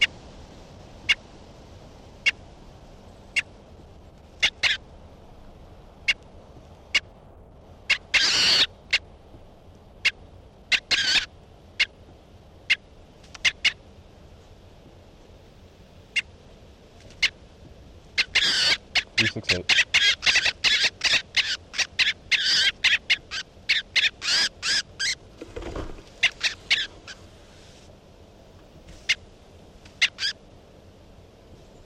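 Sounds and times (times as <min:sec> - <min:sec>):
faint steady hiss: 0:00.0 - 0:31.8
bird calling while being handled: 0:04.4 - 0:04.8, 0:07.9 - 0:09.1, 0:10.0 - 0:12.0, 0:12.7 - 0:13.8, 0:18.2 - 0:27.7, 0:29.9 - 0:30.4.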